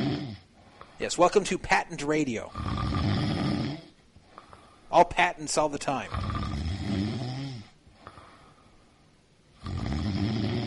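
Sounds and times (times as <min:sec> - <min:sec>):
person snoring loudly: 0:00.0 - 0:00.5, 0:02.4 - 0:03.9, 0:06.0 - 0:08.3, 0:09.6 - 0:10.6
speech: 0:01.0 - 0:02.9, 0:04.9 - 0:07.1.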